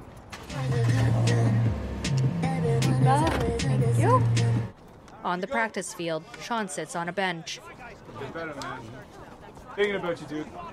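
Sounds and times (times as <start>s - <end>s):
car driving with a steady low engine drone: 0.3s - 4.7s
speech: 5.2s - 9.2s, 9.8s - 10.7s.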